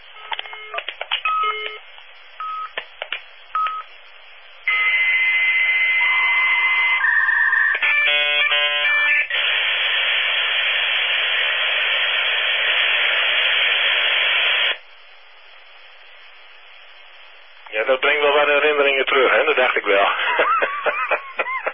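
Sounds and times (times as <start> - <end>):
dial-up modem card long steady hiss of static: 0.0 - 21.7
dial-up modem card dialing beeps in old Windows 98 laptop: 0.2 - 1.8, 3.6 - 3.9
laughter: 20.0 - 21.7.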